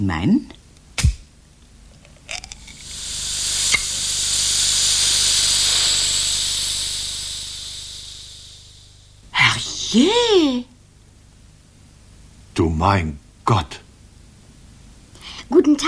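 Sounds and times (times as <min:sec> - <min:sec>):
speech: 0:00.0 - 0:00.6, 0:09.9 - 0:10.7, 0:12.6 - 0:13.8, 0:15.5 - 0:15.8
metal tin can hissing as it is opened by pulling its ring: 0:01.9 - 0:09.0.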